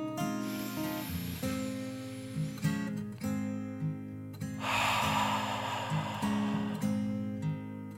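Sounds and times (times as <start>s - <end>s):
deep breath in and out: 0.2s - 3.1s, 4.5s - 7.7s.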